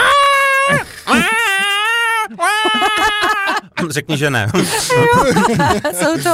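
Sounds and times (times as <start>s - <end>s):
person imitating a cat yowling in heat: 0.0s - 3.5s
laughter: 2.2s - 6.3s
speech: 3.9s - 6.3s.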